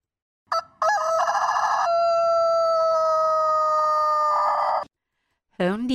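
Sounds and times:
rooster crowing: 0:00.5 - 0:04.8
speech: 0:05.6 - 0:05.9.

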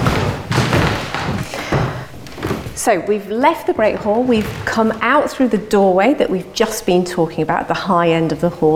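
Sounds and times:
heavy footsteps up a Jacobean staircase in a stone hall: 0:00.0 - 0:05.6
creaky wooden floorboards in a stone hall: 0:00.0 - 0:06.3
speech: 0:02.8 - 0:08.7.

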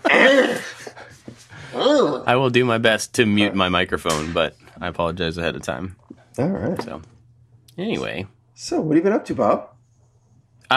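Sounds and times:
person coughing: 0:00.0 - 0:01.0
speech: 0:02.3 - 0:07.1, 0:07.8 - 0:09.7.

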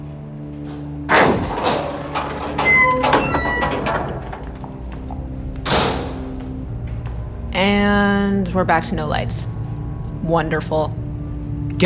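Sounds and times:
drawn-out creaking squeal of door hinges: 0:00.0 - 0:08.0
heavy basement door opening with a dull thud: 0:00.5 - 0:07.4
heavy basement door settling with a solid thump: 0:01.0 - 0:06.6
speech: 0:08.4 - 0:09.6, 0:10.2 - 0:11.0.

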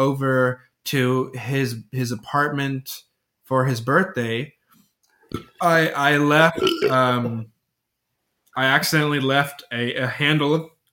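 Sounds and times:
speech: 0:00.0 - 0:04.6, 0:05.3 - 0:07.5, 0:08.6 - 0:10.7
long loud gurgling burp: 0:05.3 - 0:07.4.

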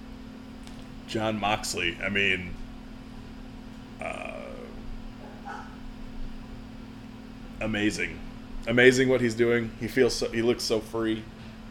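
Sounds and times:
steady low electrical hum: 0:00.0 - 0:11.6
speech: 0:01.1 - 0:02.6, 0:04.0 - 0:04.2, 0:07.6 - 0:11.4
dog barking: 0:05.2 - 0:05.8.

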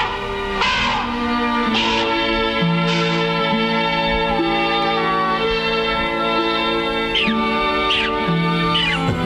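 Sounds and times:
sustained music: 0:00.0 - 0:09.2
shrill squeaky chattering bursts: 0:07.1 - 0:09.2.

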